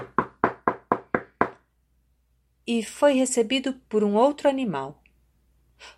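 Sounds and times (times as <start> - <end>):
firm knocking on a wooden door: 0.0 - 1.6
speech: 2.7 - 5.0.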